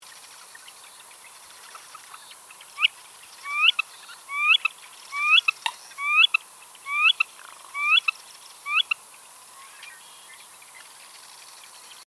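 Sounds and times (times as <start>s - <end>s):
little grebe calling: 2.8s - 8.1s.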